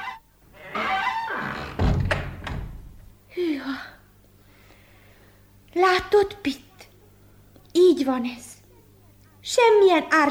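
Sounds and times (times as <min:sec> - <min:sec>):
door shutting: 0:00.6 - 0:03.1
speech: 0:05.8 - 0:06.7, 0:07.8 - 0:08.5, 0:09.5 - 0:10.2.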